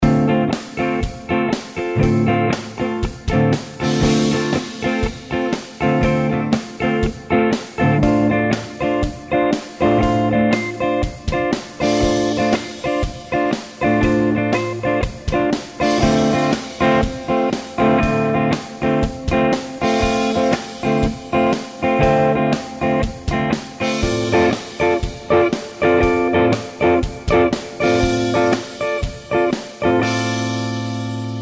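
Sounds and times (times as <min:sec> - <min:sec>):
Dm7 chords on guitar: 0:00.0 - 0:31.4.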